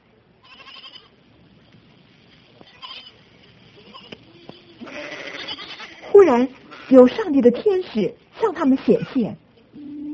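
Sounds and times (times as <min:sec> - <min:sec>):
steady noisy outdoor wash: 0:00.0 - 0:10.0
flock of sheep bleating faintly in open fields at night: 0:00.4 - 0:01.1, 0:04.8 - 0:07.0
speech: 0:06.2 - 0:09.4.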